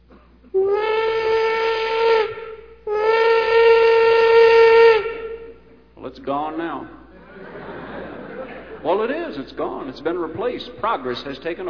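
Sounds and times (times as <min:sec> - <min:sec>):
steam locomotive whistle blasts: 0:00.6 - 0:05.6
laughter: 0:07.1 - 0:09.3
speech: 0:08.8 - 0:11.6.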